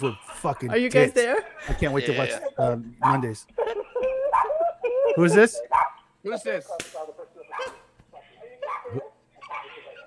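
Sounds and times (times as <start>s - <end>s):
speech: 0.0s - 3.6s, 5.2s - 7.1s
laughter: 0.0s - 5.7s, 6.7s - 10.0s
dog barking: 3.0s - 3.3s, 4.2s - 4.7s, 5.6s - 6.0s, 7.0s - 10.0s.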